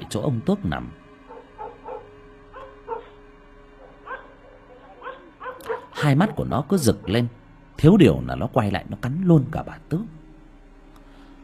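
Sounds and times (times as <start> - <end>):
low steady hum: 0.0 - 11.4
speech: 0.1 - 1.0, 6.0 - 10.2
dog barking ferociously: 1.3 - 3.2, 3.8 - 7.3.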